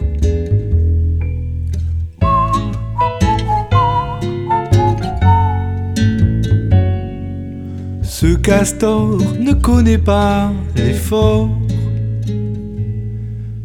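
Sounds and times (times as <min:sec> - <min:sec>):
full musical backing: 0:00.0 - 0:13.6
bright whistled jaunty melody: 0:02.2 - 0:06.8
speech: 0:08.6 - 0:11.7.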